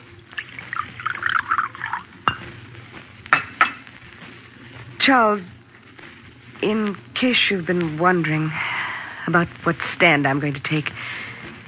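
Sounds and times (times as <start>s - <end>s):
coffee pouring into a cup at breakfast: 0.0s - 2.6s
speech: 5.0s - 5.6s, 6.6s - 8.7s, 9.3s - 11.2s.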